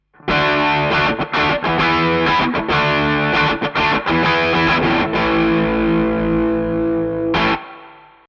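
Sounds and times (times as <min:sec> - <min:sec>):
electric guitar with crunch distortion: 0:00.1 - 0:08.2.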